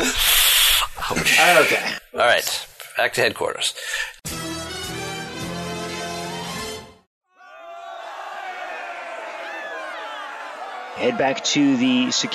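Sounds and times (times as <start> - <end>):
speech: 1.1 - 4.4, 11.0 - 12.3
protesting crowd roaring and shouting: 7.3 - 12.3.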